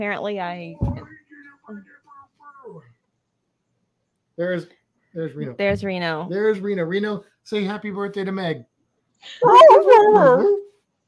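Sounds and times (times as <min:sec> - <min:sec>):
speech: 0:00.0 - 0:01.0, 0:04.4 - 0:10.6
dog whimpering and yipping: 0:09.4 - 0:10.7.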